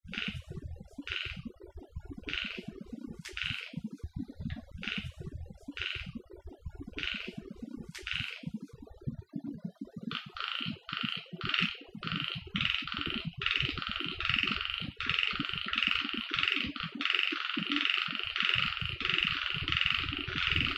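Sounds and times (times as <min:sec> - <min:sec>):
low crackling background: 0:00.0 - 0:20.7
frog calls on Okinawa: 0:00.1 - 0:01.5, 0:02.2 - 0:06.2, 0:06.9 - 0:08.7, 0:10.0 - 0:20.7.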